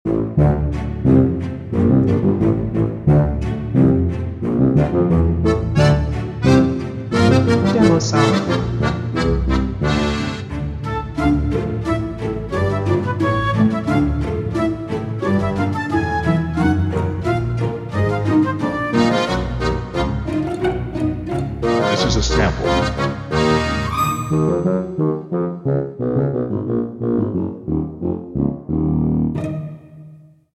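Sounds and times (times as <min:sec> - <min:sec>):
bassoon in a quirky piece: 0:00.1 - 0:30.2
accordion in a quirky piece: 0:00.3 - 0:25.0
flute in a quirky piece: 0:10.8 - 0:19.1, 0:23.8 - 0:25.0.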